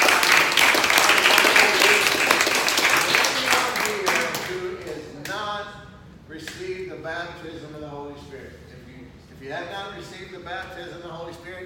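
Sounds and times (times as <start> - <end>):
audience applause in praise of God: 0.0 - 4.6.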